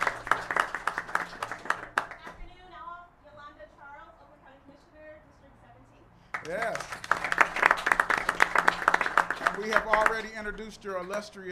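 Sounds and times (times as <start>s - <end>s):
audience applause: 0.0s - 2.3s, 6.4s - 10.4s
speech: 6.4s - 7.2s, 9.6s - 11.5s.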